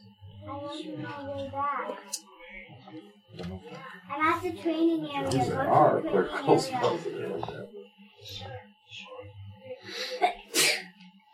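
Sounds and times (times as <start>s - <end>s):
voices murmuring: 0.0s - 11.3s
speech: 0.7s - 2.3s, 2.9s - 9.1s
person sneezing: 10.5s - 10.9s.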